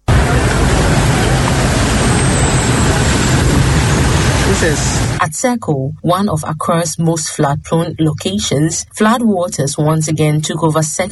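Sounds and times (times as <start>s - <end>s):
road traffic noise in a slow queue: 0.0s - 5.2s
speech: 4.6s - 11.1s.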